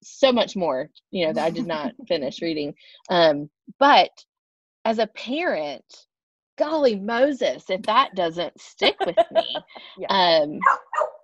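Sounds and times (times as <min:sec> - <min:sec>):
speech: 0:00.0 - 0:11.2
laughter: 0:01.4 - 0:01.9, 0:08.8 - 0:10.0
dog barking: 0:10.6 - 0:11.2.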